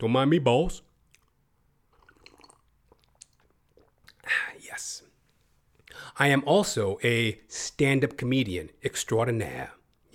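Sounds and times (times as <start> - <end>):
speech: 0.0 - 0.9, 6.1 - 10.1
lip smacks: 1.0 - 4.3
person sipping water: 1.0 - 4.6
swallowing: 1.1 - 4.3.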